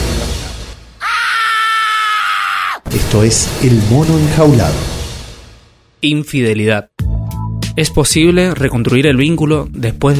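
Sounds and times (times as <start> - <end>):
loud sustained high-pitched scream: 1.0 - 2.9
dense rumbling noise: 2.9 - 6.0
speech: 3.0 - 4.9, 6.0 - 6.9, 7.8 - 10.1.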